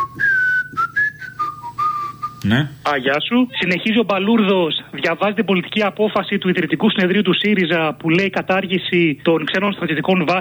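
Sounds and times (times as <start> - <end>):
whistled melody: 0.0 - 2.4
speech: 2.5 - 10.4.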